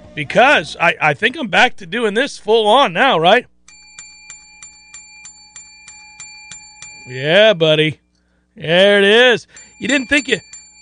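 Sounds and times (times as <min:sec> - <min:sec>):
speech: 0:00.2 - 0:03.5, 0:07.1 - 0:08.0, 0:08.6 - 0:10.5
bicycle bell ringing: 0:03.7 - 0:07.3, 0:09.4 - 0:10.8.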